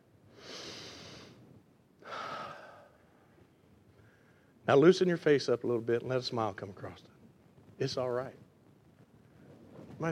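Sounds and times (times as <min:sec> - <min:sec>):
slow deep breath: 0:00.3 - 0:04.6
speech: 0:04.7 - 0:07.2, 0:07.8 - 0:08.4.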